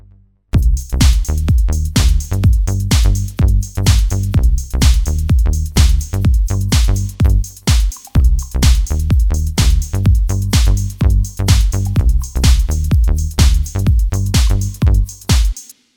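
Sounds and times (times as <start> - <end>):
finished synthesizer beat: 0.5 - 15.7.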